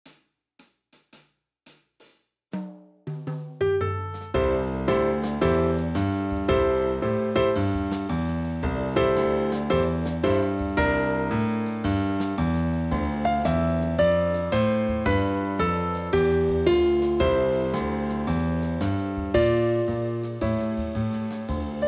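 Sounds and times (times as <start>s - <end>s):
walking bass line: 4.4s - 21.8s.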